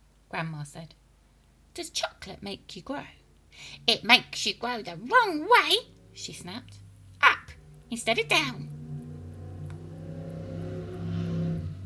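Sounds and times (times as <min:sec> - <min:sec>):
speech: 0:00.3 - 0:01.0, 0:01.8 - 0:08.7
motorbike engine passing outside the window: 0:03.6 - 0:11.8.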